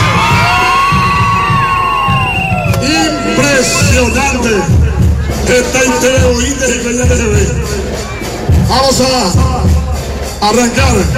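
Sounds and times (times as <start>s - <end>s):
shrill whoops: 0.0s - 4.0s
crowd of women shouting and cheering: 0.0s - 4.2s
speech: 4.0s - 4.8s, 5.5s - 7.8s, 8.7s - 11.1s.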